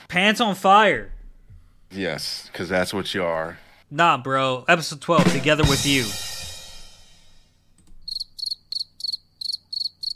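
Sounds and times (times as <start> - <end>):
speech: 0.1 - 1.2, 1.9 - 6.3
crickets chirping: 8.0 - 10.1.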